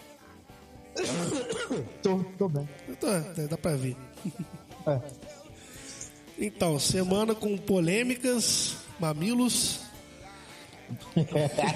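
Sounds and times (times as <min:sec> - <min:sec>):
man clearing his throat with a gravelly rasp: 0:01.0 - 0:02.0
speech: 0:01.0 - 0:05.4, 0:06.4 - 0:09.8, 0:10.9 - 0:11.7
laughter: 0:04.0 - 0:05.5, 0:10.8 - 0:11.7.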